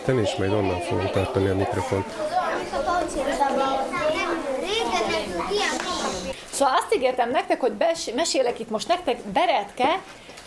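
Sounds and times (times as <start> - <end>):
speech: 0.0 - 4.2, 5.0 - 10.4
many children chattering and calling out in a small crowded space: 0.0 - 6.4.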